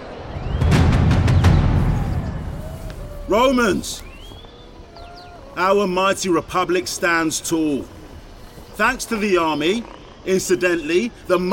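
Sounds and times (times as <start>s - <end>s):
big drum struck loud and booming: 0.5s - 2.8s
speech: 3.3s - 4.1s, 5.6s - 8.0s, 8.8s - 11.5s.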